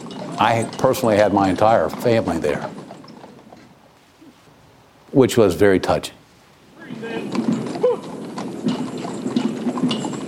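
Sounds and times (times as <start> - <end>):
hooves of horses pulling a caisson: 0.0 - 10.2
speech: 0.4 - 2.8, 5.2 - 6.2.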